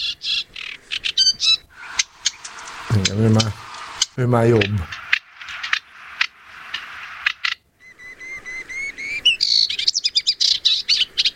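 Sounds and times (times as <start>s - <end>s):
moustached warbler singing: 0.0s - 11.3s
speech: 2.9s - 3.6s, 4.2s - 4.9s.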